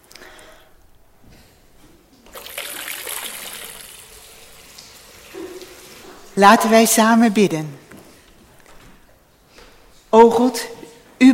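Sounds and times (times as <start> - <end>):
water trickling and pouring during baptism: 2.3 - 6.4
speech: 6.4 - 7.8, 10.2 - 11.3.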